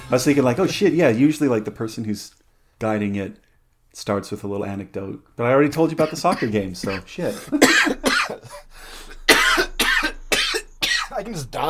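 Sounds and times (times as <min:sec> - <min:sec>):
speech: 0:00.1 - 0:08.9, 0:11.2 - 0:11.6
person coughing with harsh hacking coughs: 0:06.0 - 0:11.2
brief raspy breath: 0:08.4 - 0:09.3.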